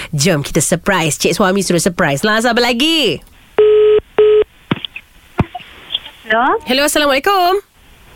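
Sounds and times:
speech: 0.1s - 3.3s, 6.3s - 7.7s
telephone ringing tone over a phone line: 3.6s - 4.4s
phone line noise: 3.6s - 4.5s.

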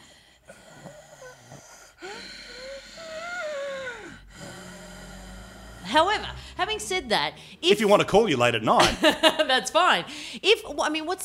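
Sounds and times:
voice imitating heavy audible wheezy breathing: 0.0s - 6.6s
speech: 6.0s - 11.2s.

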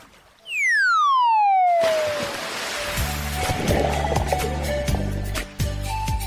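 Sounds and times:
churning water: 0.0s - 6.1s
falling slide-whistle tone: 0.4s - 2.3s
loud splash of something plunging into water: 1.5s - 5.4s.

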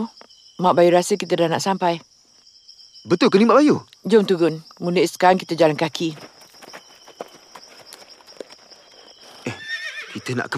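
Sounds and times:
speech: 0.0s - 2.1s, 3.0s - 6.3s, 10.2s - 10.5s
horse hooves clip-clopping: 5.7s - 10.2s
horse whinnying: 9.4s - 10.4s.

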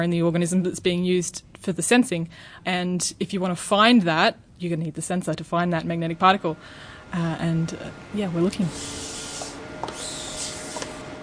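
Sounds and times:
speech: 0.0s - 9.1s
quantum sensor lab microscopes humming: 4.4s - 11.2s.

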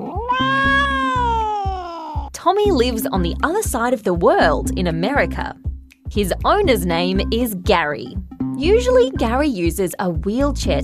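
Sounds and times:
cat meowing: 0.0s - 2.3s
faint low rhythmic thumping: 0.2s - 10.8s
speech: 2.4s - 10.8s.

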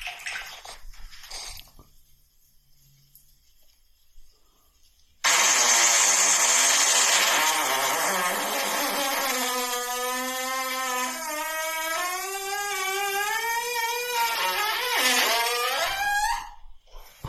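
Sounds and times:
long loud buzzy fart: 5.3s - 16.6s.

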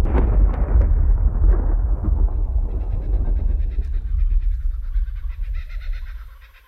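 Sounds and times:
deep rolling rumble of distant thunder: 0.0s - 6.6s
faint bird chirps: 2.8s - 6.6s.

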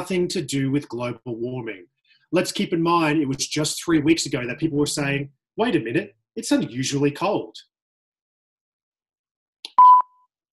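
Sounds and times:
speech: 0.0s - 7.7s
electronic sensor beep: 9.7s - 10.3s.

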